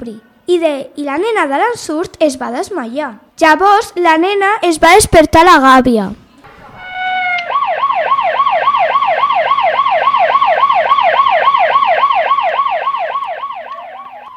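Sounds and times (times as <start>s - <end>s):
speech: 0.0s - 6.2s
police siren wailing: 6.6s - 14.3s.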